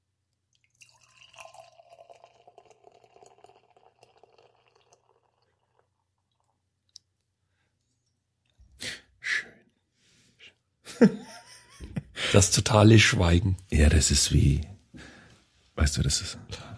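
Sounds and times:
beer pouring into a glass: 0.6 - 6.6
laughter: 10.9 - 12.5
speech: 11.0 - 11.2, 12.3 - 14.7, 15.9 - 16.7.

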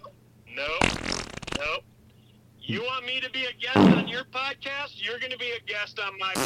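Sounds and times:
fart sound effect played as a drop: 0.8 - 1.7, 3.8 - 4.2
speech: 2.7 - 6.4.

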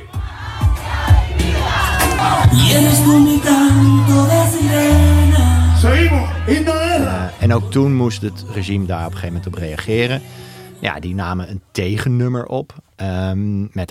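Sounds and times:
protesters shouting: 0.0 - 7.6
large crowd of street protesters chanting a protest slogan: 0.0 - 10.9
speech: 2.6 - 5.0, 5.8 - 6.8, 7.5 - 13.9.

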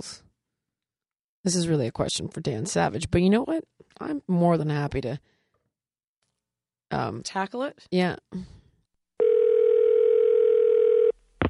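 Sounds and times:
speech: 1.4 - 5.4, 6.9 - 8.6
telephone ring tone on the line while a call is placed: 9.2 - 11.2.

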